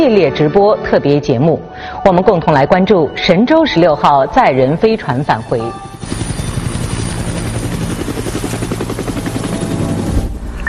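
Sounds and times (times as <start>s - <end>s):
speech: 0.0s - 6.4s
helicopter rotor noise with engine whine: 4.0s - 10.6s.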